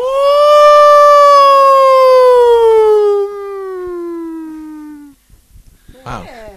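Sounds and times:
person howling in falsetto imitating a wild animal: 0.0s - 5.1s.

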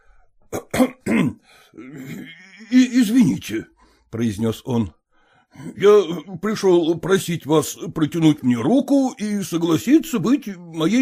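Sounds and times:
man clearing his throat: 0.5s - 2.6s
speech: 0.8s - 11.0s.

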